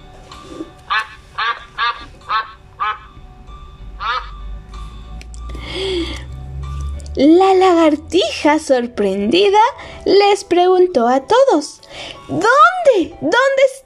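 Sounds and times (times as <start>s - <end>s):
duck quacking: 0.9s - 3.1s, 4.0s - 4.4s
speech: 7.2s - 13.8s.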